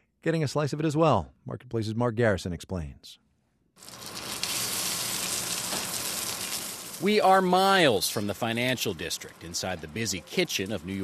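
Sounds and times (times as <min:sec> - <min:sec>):
speech: 0:00.2 - 0:03.2, 0:03.8 - 0:04.0, 0:07.0 - 0:11.0
pork belly frying in a hot pan: 0:03.8 - 0:08.4.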